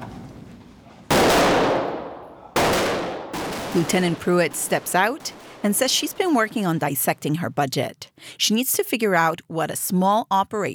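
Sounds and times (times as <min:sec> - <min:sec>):
gunshots at police shooting range practice: 0:01.1 - 0:07.0
speech: 0:03.7 - 0:10.7.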